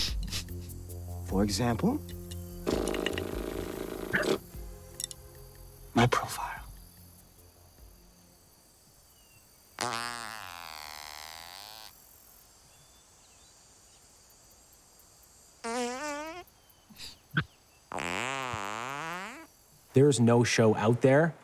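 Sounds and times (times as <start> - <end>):
faint steady hiss: 0.0 - 21.4
speech: 1.3 - 2.8, 20.0 - 21.4
farts: 2.7 - 4.4, 9.8 - 11.9, 15.6 - 16.4, 17.9 - 19.5.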